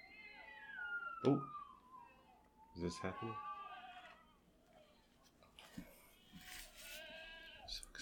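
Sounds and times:
speech: 1.2 - 1.6, 2.8 - 3.5
goats bleating outdoors in dirt in hot weather: 2.9 - 5.0, 6.1 - 8.0
faint rustling background: 4.7 - 7.6.

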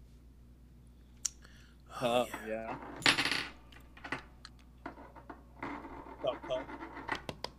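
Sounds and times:
speech: 2.0 - 3.4, 6.2 - 6.9
coin flipped in a heads-or-tails game landing on a hard surface: 2.8 - 6.2.

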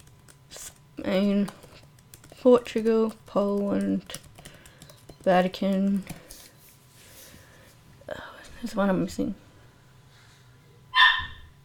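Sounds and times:
low hum: 0.0 - 11.6
speech: 1.0 - 1.6, 2.4 - 4.2, 5.2 - 6.2, 8.6 - 9.4
dog barking: 11.0 - 11.5.

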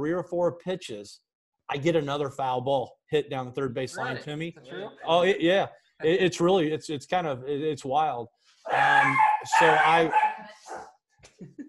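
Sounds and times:
speech: 0.0 - 10.3
dog barking at neighbor's dog: 8.7 - 11.0.

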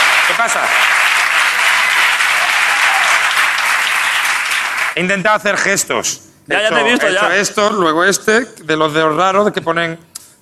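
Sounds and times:
live audience applause: 0.0 - 5.0
speech: 0.4 - 0.9, 5.0 - 10.1.

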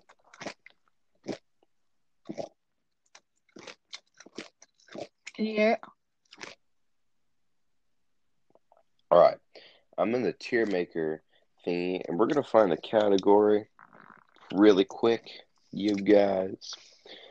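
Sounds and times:
crisp food being bitten and chewed: 0.0 - 1.5, 2.2 - 6.6, 10.5 - 10.8, 12.2 - 14.8, 15.8 - 16.2
speech: 5.4 - 6.0, 10.1 - 13.7, 14.5 - 16.9
person asking a question: 9.1 - 9.4, 10.0 - 13.6, 14.5 - 16.8.

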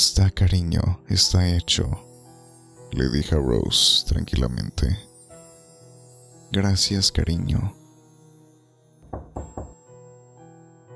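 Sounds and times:
speech: 0.0 - 2.1, 2.9 - 5.1, 6.5 - 7.8
doctor knocking on a door in a hospital: 9.0 - 9.8.

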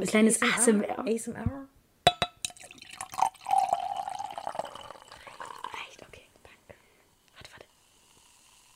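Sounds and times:
speech: 0.0 - 1.7
sharp glassy clinks: 2.1 - 5.6
liquor pouring into a glass: 2.3 - 5.9.

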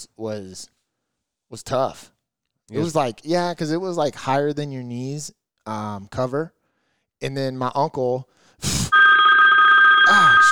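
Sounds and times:
speech: 0.0 - 0.8, 1.5 - 6.6, 7.2 - 9.0, 10.1 - 10.5
mobile phone ringing with a steady electronic tone: 8.9 - 10.5.

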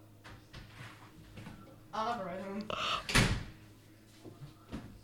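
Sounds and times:
scattered voices in the room: 1.9 - 2.7
door slamming shut: 3.1 - 3.5.

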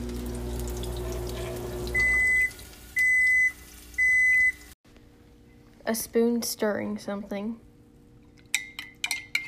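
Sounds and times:
microwave oven beeping: 0.0 - 4.8
faint hum: 0.0 - 9.4
speech: 5.9 - 7.6.

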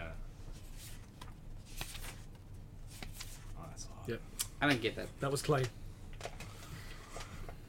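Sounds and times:
low steady hum: 0.0 - 7.6
comic book pages being turned: 0.6 - 3.5
speech: 4.0 - 5.8.

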